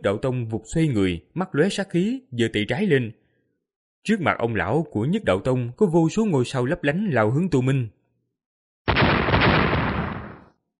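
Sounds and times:
speech: 0.0s - 3.2s, 4.0s - 8.0s
deafening explosion: 8.9s - 10.5s.

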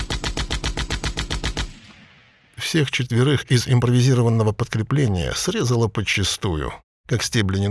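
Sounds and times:
gunfire burst from the nose turret gun of a rusted wrecked tank: 0.0s - 2.6s
speech: 2.6s - 7.6s.

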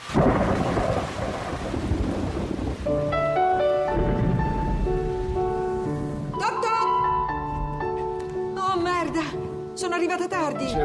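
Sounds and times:
heavy rain on a Paris boulevard: 0.0s - 7.8s
music in a film scene: 2.8s - 10.8s.

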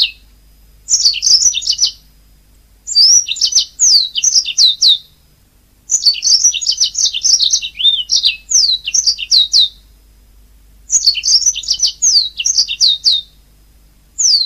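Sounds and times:
Oriental magpie-robin singing whistles and slurred notes: 0.0s - 0.2s, 0.9s - 2.0s, 2.9s - 5.2s, 5.9s - 9.8s, 10.9s - 13.4s, 14.2s - 14.4s.

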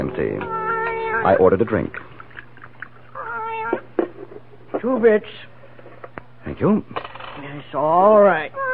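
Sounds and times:
faint steady hum: 0.0s - 8.7s
speech: 0.1s - 0.6s, 1.2s - 2.1s, 4.8s - 5.5s, 6.5s - 8.6s
cat meowing: 0.4s - 1.4s, 3.1s - 3.8s, 8.6s - 8.7s.

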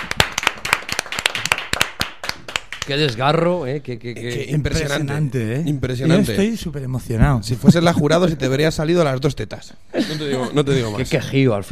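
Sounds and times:
applause of sharp hand claps from a small group for a flamenco-style sung performance: 0.0s - 3.2s
speech: 2.9s - 11.6s.

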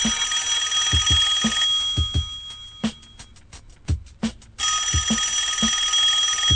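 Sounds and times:
telephone ringing in an office: 0.0s - 3.3s, 4.6s - 6.5s
low thumping beat: 0.0s - 6.5s.

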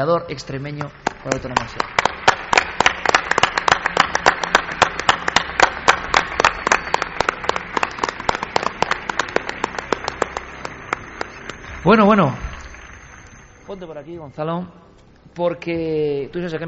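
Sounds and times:
speech: 0.0s - 2.1s, 11.8s - 12.5s, 13.7s - 16.6s
studio audience applauding with steady rhythmic clapping: 0.7s - 14.0s.

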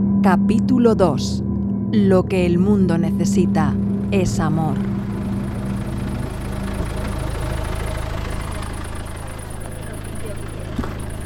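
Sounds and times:
speech: 0.2s - 5.0s
car engine idling before refuelling: 3.5s - 11.2s.

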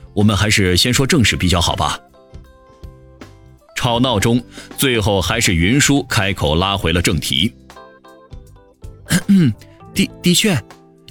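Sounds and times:
speech: 0.2s - 2.1s, 3.8s - 7.6s, 9.3s - 10.8s
soft breathy sounds: 4.4s - 4.8s
gravelly throat clearing: 9.1s - 9.8s.

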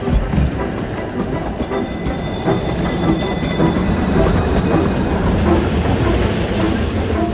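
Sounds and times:
tram wheels rumbling on rails: 0.0s - 7.3s
high metallic tram wheel squeal: 1.4s - 6.2s.

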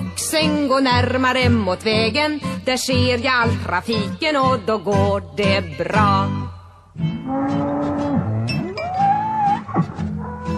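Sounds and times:
speech: 0.4s - 7.7s
cow and calf mooing on a country road: 7.2s - 10.5s.

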